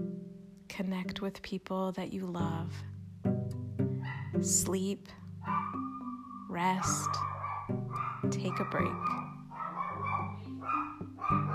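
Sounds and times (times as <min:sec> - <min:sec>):
speech: 0:00.8 - 0:02.9, 0:04.4 - 0:05.2, 0:06.6 - 0:07.3, 0:08.3 - 0:09.2
dog barking: 0:04.0 - 0:04.4, 0:05.4 - 0:11.5.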